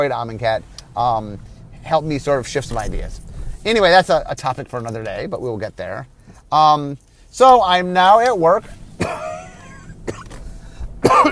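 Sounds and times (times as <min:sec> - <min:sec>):
speech: 0:00.0 - 0:09.2
coughing: 0:09.0 - 0:10.4, 0:11.0 - 0:11.3.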